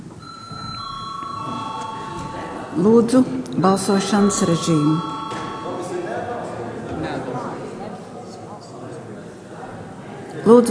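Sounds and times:
faint room murmur: 0.0s - 10.7s
parliamentary voting bell ringing: 0.2s - 6.9s
speech: 2.8s - 5.1s, 10.5s - 10.7s.

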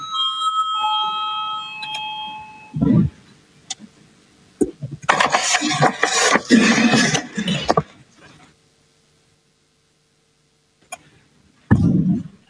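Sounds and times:
parliamentary voting bell electronic chime ringing: 0.0s - 2.9s
shuffling room noise: 5.0s - 8.6s
thud: 11.7s - 12.3s.

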